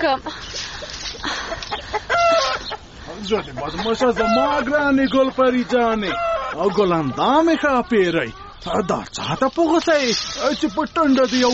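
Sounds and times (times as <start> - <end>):
speech: 0.0 - 0.5, 3.2 - 11.5
chickens clucking in a home courtyard with scattered grain: 0.0 - 11.5
chicken squawk: 1.7 - 2.9, 3.6 - 4.8, 5.6 - 11.5.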